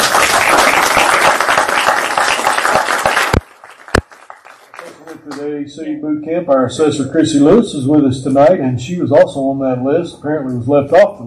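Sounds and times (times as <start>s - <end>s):
crowd applauding: 0.0s - 5.5s
sharp claps: 0.0s - 5.5s
speech: 5.4s - 11.2s.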